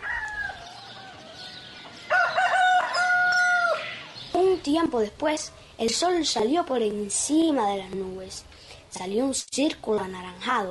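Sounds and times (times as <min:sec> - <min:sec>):
roosters crowing at night before dawn: 0:00.0 - 0:04.2
speech: 0:04.6 - 0:10.6.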